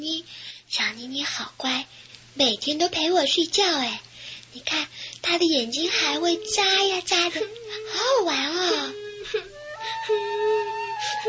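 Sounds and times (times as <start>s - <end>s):
speech: 0.0s - 11.2s
young girl crying: 5.9s - 11.2s.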